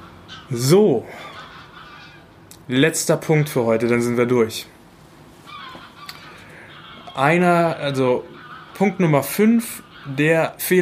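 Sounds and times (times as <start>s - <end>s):
geese honking as they fly overhead: 0.0s - 2.4s, 5.4s - 10.8s
steady outdoor hiss: 0.0s - 10.8s
speech: 0.4s - 1.3s, 2.7s - 4.8s, 7.2s - 10.8s.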